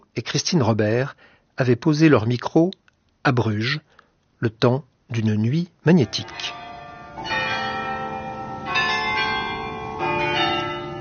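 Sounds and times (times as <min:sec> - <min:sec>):
speech: 0:00.2 - 0:06.6
many church bells ringing together: 0:05.9 - 0:10.9.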